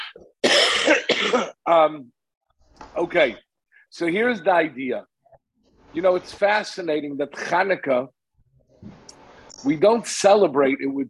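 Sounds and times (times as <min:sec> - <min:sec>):
loud harsh coughs: 0:00.4 - 0:01.6
speech: 0:01.3 - 0:02.2, 0:03.0 - 0:05.1, 0:06.0 - 0:08.2, 0:09.6 - 0:11.0.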